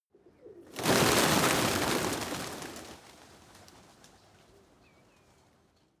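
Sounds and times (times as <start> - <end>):
pigeon flock taking off heavily: 0.7 - 4.4.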